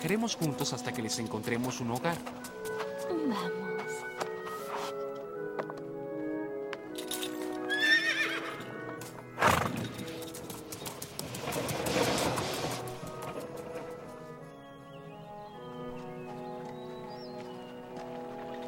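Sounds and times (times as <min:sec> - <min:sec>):
speech: 0:00.0 - 0:03.6
horse hooves clip-clopping: 0:00.0 - 0:06.0, 0:06.6 - 0:18.6
horse neighing: 0:07.7 - 0:08.8.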